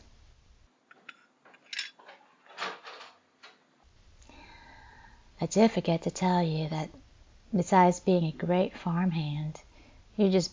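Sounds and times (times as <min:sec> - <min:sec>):
dishes clinking and clattering in a sink: 0:00.9 - 0:03.1
speech: 0:05.4 - 0:10.5.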